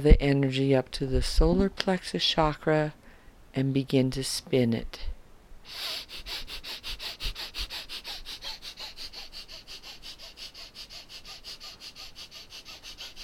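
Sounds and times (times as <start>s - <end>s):
speech: 0.0s - 3.0s, 3.6s - 5.1s, 5.7s - 6.5s
breath of fire rapid nasal breathing during a chakra meditation: 5.6s - 13.2s.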